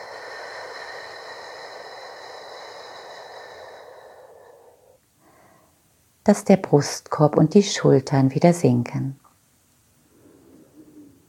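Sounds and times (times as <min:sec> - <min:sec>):
slow breathing through the nose during a guided relaxation exercise: 0:00.0 - 0:05.8
speech: 0:06.3 - 0:09.2.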